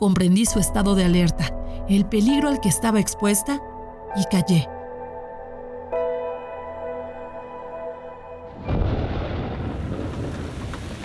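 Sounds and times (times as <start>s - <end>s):
speech: 0.0s - 4.8s
sustained musical drone: 0.5s - 9.2s
loud crack of thunder rolling into a rumble: 8.5s - 11.0s.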